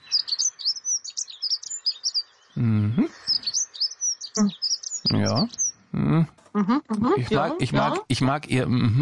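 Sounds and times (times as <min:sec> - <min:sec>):
bird singing high rapid chirps and trills: 0:00.0 - 0:05.9
speech: 0:02.6 - 0:03.2, 0:06.6 - 0:09.0.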